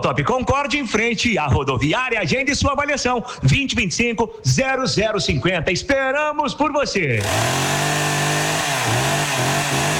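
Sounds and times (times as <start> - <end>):
speech: 0.0 - 8.2
chainsaw running under load: 7.2 - 9.9.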